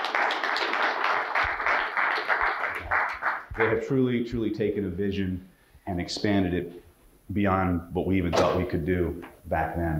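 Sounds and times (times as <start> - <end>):
sizable crowd applauding: 0.0 - 3.7
speech: 3.6 - 9.9.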